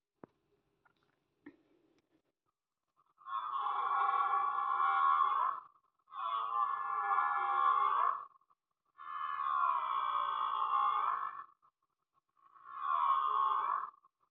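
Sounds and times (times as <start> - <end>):
deer animal sounds: 3.2 - 8.4, 9.0 - 11.6, 12.4 - 14.0.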